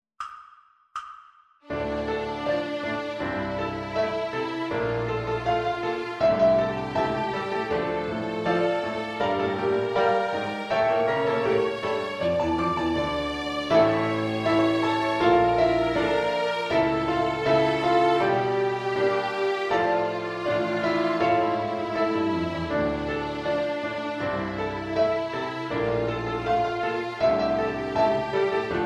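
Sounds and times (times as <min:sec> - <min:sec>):
piano backing track: 0:01.6 - 0:28.8
violin playing D minor harmonic scale: 0:01.7 - 0:28.8.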